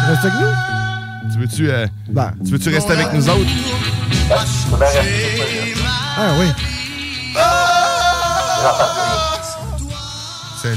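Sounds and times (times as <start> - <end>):
speech: 0.2 - 7.6, 8.6 - 9.4
laughter: 4.3 - 6.6, 7.4 - 9.6
several voices yelling together in a raucous group shout: 7.4 - 9.5.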